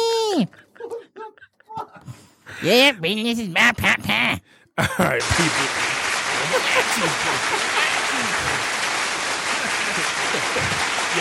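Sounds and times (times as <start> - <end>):
speech: 0.4 - 0.6, 2.6 - 8.7, 9.9 - 11.1
laughter: 0.5 - 2.1, 4.8 - 11.1
crowd applause sound effect played from a soundboard: 5.2 - 11.1
murmuring voices: 5.2 - 11.1.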